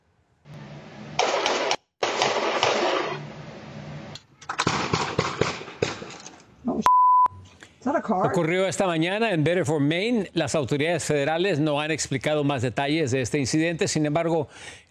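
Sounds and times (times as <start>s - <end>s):
gunshots on security camera footage: 1.2s - 3.2s, 4.5s - 6.4s
steady high electronic beep: 6.8s - 7.4s
speech: 8.0s - 14.8s.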